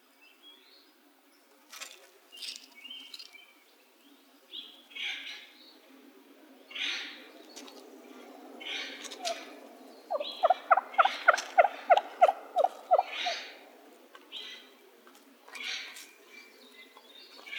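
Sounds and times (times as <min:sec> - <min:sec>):
wild turkey gobble in Arizona: 0:10.1 - 0:13.7.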